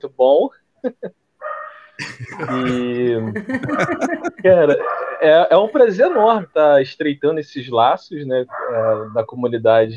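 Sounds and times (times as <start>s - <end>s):
speech: 0.0s - 1.2s, 2.0s - 9.9s
laughter: 0.8s - 1.1s, 2.0s - 4.9s
neighbor's dog barking: 1.4s - 1.9s, 3.6s - 4.1s, 4.7s - 5.3s, 8.5s - 9.2s.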